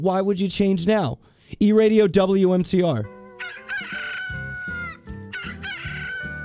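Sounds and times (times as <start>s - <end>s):
speech: 0.0s - 4.0s
rooster crowing at dawn: 3.4s - 6.4s.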